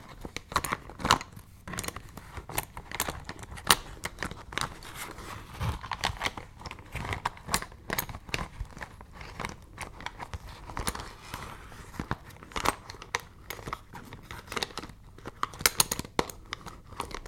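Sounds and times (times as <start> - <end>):
small objects rattling and clacking inside a pencil case: 0.0 - 17.2
pencil case unzipping: 3.6 - 12.7.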